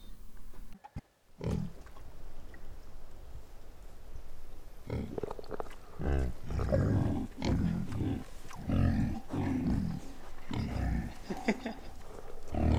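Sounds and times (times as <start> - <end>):
pig grunting and squealing: 1.4 - 1.8, 4.9 - 12.7
laughter: 10.9 - 12.3.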